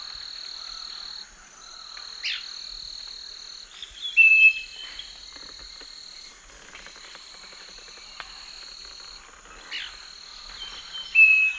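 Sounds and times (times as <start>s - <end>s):
Scaly-breasted Wren Microcerculus marginatus singing in the eastern lowlands of South America: 10.6s - 11.5s.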